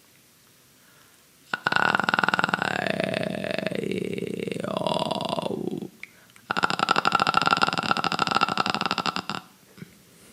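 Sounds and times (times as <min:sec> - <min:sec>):
voice holding vocal fry tones on sustained vowels: 0:01.5 - 0:09.6.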